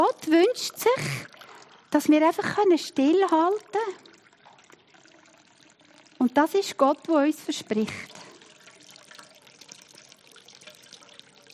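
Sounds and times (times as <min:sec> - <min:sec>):
speech: 0:00.0 - 0:04.1, 0:06.2 - 0:08.2
water pouring and overflowing: 0:00.0 - 0:11.5.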